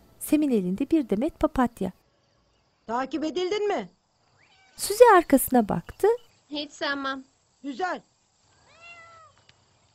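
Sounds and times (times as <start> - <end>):
speech: 0.3 - 2.0, 2.9 - 4.0, 4.8 - 8.1
cat meowing: 4.4 - 4.8, 8.6 - 9.4.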